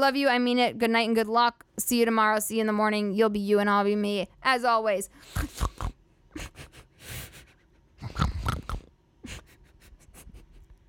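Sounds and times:
speech: 0.0 - 5.7
person snorting from breathing in too fast: 5.2 - 10.4.

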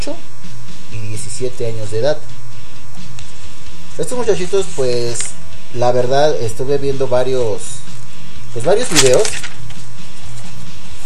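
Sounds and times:
speech: 0.0 - 0.3, 1.4 - 2.4, 4.0 - 7.8, 8.5 - 9.4
notebook paper rustling and scraping: 4.2 - 5.4, 8.7 - 11.0.

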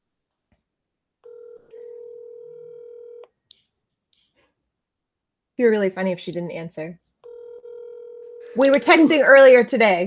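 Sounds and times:
phone dialing tones from an outgoing call: 1.2 - 3.3, 7.2 - 8.7
speech: 5.6 - 7.0, 8.5 - 10.0.

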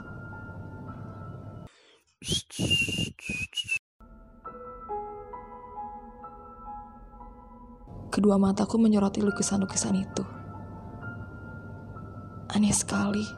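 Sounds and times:
soft sustained tones: 0.0 - 1.7, 4.1 - 13.3
speech: 2.2 - 3.4, 8.2 - 10.4, 12.6 - 13.3
person whistling a short shrill tune: 2.2 - 3.8.

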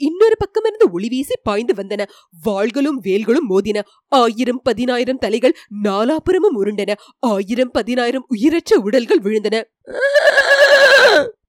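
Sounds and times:
speech: 0.3 - 11.4
horse neighing as it falls dead in a battle: 9.9 - 11.4.

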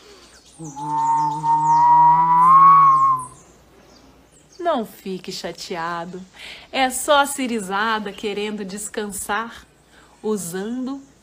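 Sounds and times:
speech: 0.6 - 1.7, 4.7 - 11.1
strong wind whistling and howling: 0.8 - 3.4.

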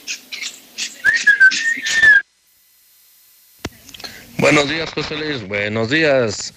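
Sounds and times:
mocking human whistle: 1.0 - 2.3
speech: 4.5 - 6.5.

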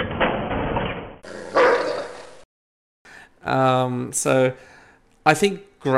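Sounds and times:
video game dog barking sound effect: 1.2 - 2.3
speech: 3.4 - 5.9.

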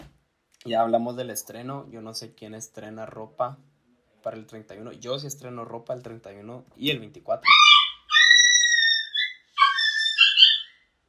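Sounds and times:
speech: 0.6 - 7.6
dog whining: 7.4 - 10.8.

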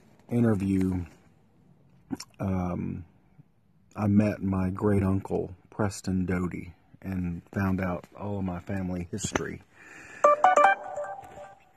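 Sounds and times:
speech: 0.3 - 1.2, 2.1 - 3.1, 4.0 - 10.0
phone ringtone of bright electronic beeps: 10.2 - 11.7.

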